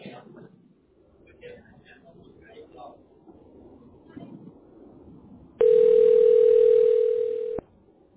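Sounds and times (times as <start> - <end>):
faint low murmur: 0.0 - 8.1
long electronic telephone tone on a repeat call to a help line: 5.6 - 7.6.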